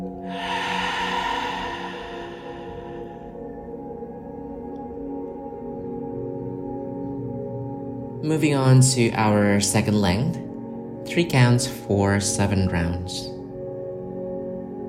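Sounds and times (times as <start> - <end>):
steady music: 0.0 - 14.8
deep breath pushed out through an open mouth during a breathing exercise: 0.2 - 3.5
speech: 8.2 - 10.4, 11.1 - 13.3.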